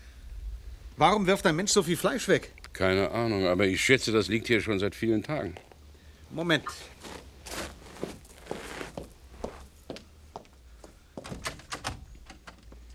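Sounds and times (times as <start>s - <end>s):
speech: 1.0s - 5.7s, 6.3s - 7.6s
locked back door being tried: 11.2s - 12.8s.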